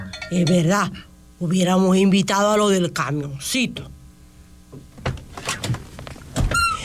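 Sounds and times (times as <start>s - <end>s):
speech: 0.3s - 4.0s
door opening and closing: 5.0s - 6.8s.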